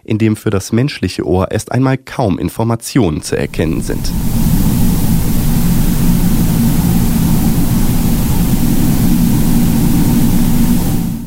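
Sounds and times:
speech: 0.1s - 4.4s
underwater ambient noise from ocean microphones: 3.2s - 11.2s.

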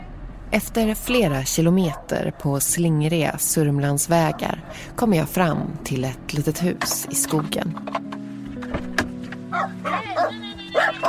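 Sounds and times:
speech: 0.5s - 8.9s
dog barking at a small house in the forest in Sörmland: 1.9s - 2.6s, 4.2s - 4.8s, 9.5s - 11.0s.

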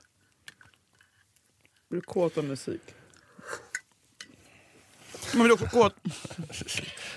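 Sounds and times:
wet smacking and slurping of someone chewing olives: 0.0s - 4.1s
speech: 1.9s - 3.6s, 5.4s - 7.0s.

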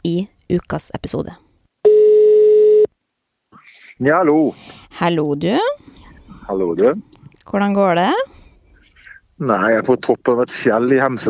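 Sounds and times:
speech: 0.1s - 1.4s, 4.0s - 5.8s, 6.5s - 8.3s, 9.4s - 11.2s
telephone line tone while a call is placed: 1.8s - 2.9s.

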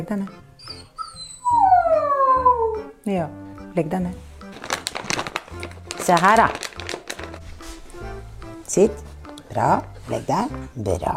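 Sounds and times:
speech: 0.0s - 0.4s, 3.1s - 4.3s, 5.6s - 6.6s, 8.7s - 11.1s
puppy whimpering: 0.6s - 2.9s.

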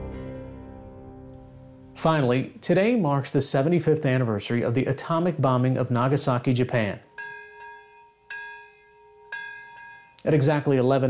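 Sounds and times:
speech: 2.0s - 7.1s, 10.2s - 11.0s
bells ringing in Nagasaki: 7.0s - 11.0s.

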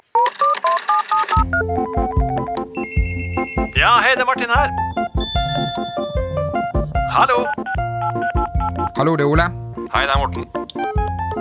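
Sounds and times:
telephone call connection electronic tones and clicks: 0.0s - 9.0s
telephone touch-tone dialing beeps: 0.1s - 3.8s, 4.9s - 6.2s, 7.4s - 9.0s
speech: 3.8s - 5.0s, 7.2s - 7.8s, 9.0s - 10.6s.

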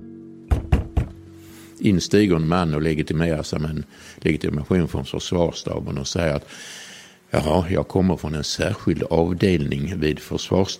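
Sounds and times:
firm knocking on a door: 0.5s - 1.2s
speech: 1.8s - 10.7s.

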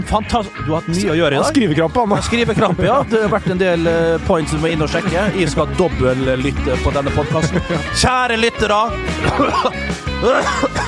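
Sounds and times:
speech: 0.1s - 10.8s
laughter: 1.0s - 8.5s, 9.2s - 10.8s
throaty coughs: 9.2s - 10.8s.

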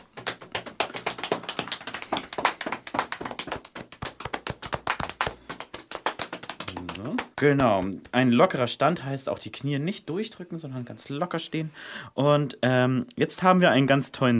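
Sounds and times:
hands patting against the right side of the body: 0.0s - 8.2s
speech: 7.4s - 14.3s.

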